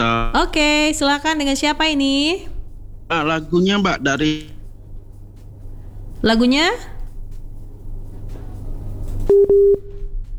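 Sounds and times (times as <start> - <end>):
speech: 0.0 - 2.5, 3.1 - 4.6, 6.2 - 6.9, 9.3 - 10.3
low hum: 0.0 - 10.3
telephone busy tone after a call-in line caller is cut off: 9.3 - 9.9.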